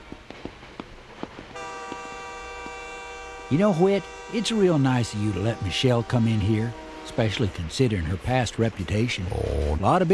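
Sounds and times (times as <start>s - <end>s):
bright model train whistle: 1.6s - 8.7s
speech: 3.5s - 10.1s.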